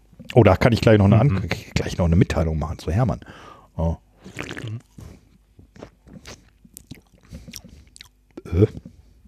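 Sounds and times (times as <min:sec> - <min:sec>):
speech: 0:00.4 - 0:05.2, 0:08.5 - 0:08.9
person drinking cola, gulping and swallowing: 0:04.2 - 0:09.0.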